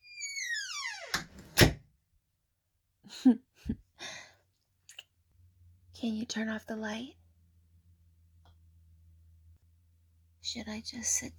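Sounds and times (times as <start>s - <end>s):
door creaking with a descending squeal: 0.0s - 1.8s
door shutting with a solid thump: 0.5s - 1.8s
speech: 3.2s - 3.8s, 6.0s - 7.2s, 10.5s - 11.3s.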